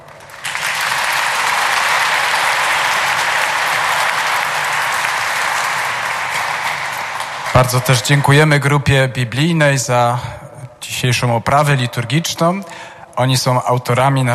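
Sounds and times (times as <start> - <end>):
large audience applause: 0.0 - 8.5
speech: 7.6 - 14.3.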